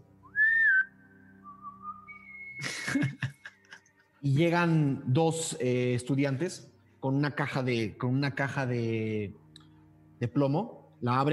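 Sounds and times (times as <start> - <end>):
loud high whistle: 0.3 - 2.8
speech: 2.6 - 3.2, 4.2 - 9.4, 10.2 - 11.3
laughter: 2.6 - 4.0.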